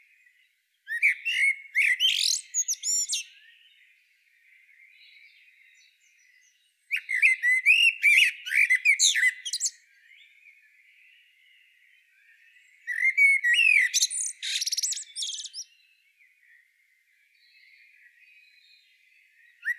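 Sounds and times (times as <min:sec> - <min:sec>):
Common blackbird Turdus merula singing: 0:00.2 - 0:16.6, 0:17.3 - 0:19.7.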